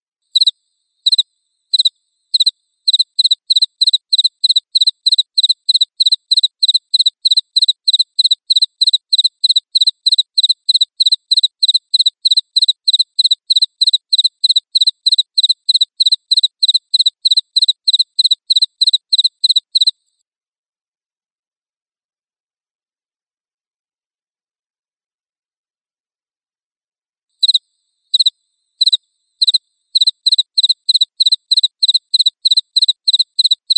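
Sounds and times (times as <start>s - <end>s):
crickets chirping: 0.3s - 19.9s, 27.4s - 33.7s.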